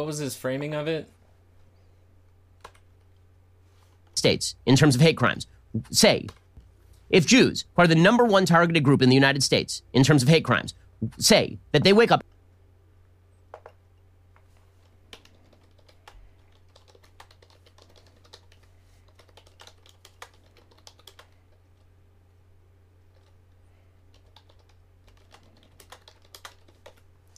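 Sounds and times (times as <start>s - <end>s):
speech: 0.0s - 1.2s, 4.2s - 6.4s, 7.1s - 12.3s
typing on a computer keyboard: 2.6s - 2.9s, 15.1s - 21.9s, 23.1s - 23.4s, 24.1s - 27.3s.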